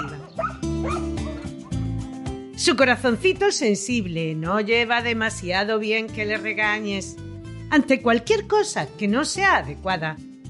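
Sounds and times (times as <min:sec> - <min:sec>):
dog barking: 0:00.0 - 0:01.5
speech: 0:02.6 - 0:10.3.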